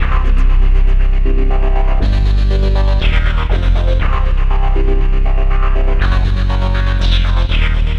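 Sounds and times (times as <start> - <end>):
pulsating bass: 0.0 - 7.9.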